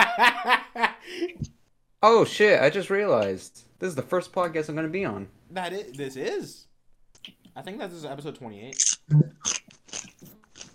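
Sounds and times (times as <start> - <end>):
speech: 2.0 - 9.6
crunchy chewing of food: 8.8 - 10.7.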